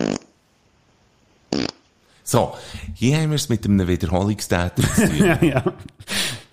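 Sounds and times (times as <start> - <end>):
fart sounds: 0.0 - 0.4, 1.5 - 1.9
speech: 2.3 - 6.0
laughter: 4.8 - 6.4.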